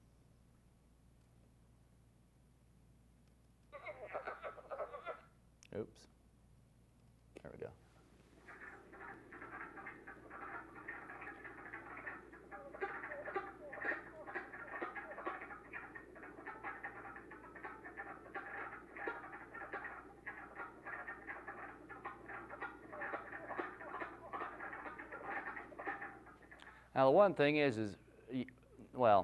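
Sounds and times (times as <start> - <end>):
low hum: 0.0 - 29.2
chorus of wood frogs giving clucking and chuckling calls: 3.7 - 5.3, 8.4 - 27.0
speech: 5.8 - 6.2, 7.4 - 7.9, 27.0 - 29.2.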